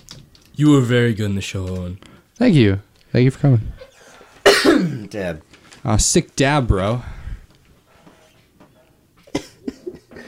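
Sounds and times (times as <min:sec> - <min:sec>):
speech: 0:00.6 - 0:03.9, 0:04.6 - 0:07.2
person coughing: 0:04.4 - 0:05.1, 0:09.2 - 0:10.2.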